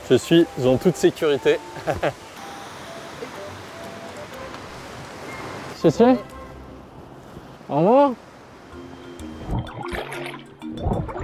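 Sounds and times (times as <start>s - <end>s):
turbulent river water rushing over rocks during a rafting descent in Jilin China: 0.0s - 8.8s
speech: 0.1s - 2.3s, 5.8s - 6.3s, 7.7s - 8.2s, 10.8s - 11.2s.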